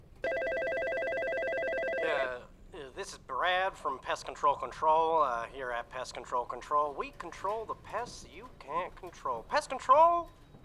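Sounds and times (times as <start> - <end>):
telephone ringing with electronic trill: 0.2 - 2.3
speech: 3.1 - 10.4.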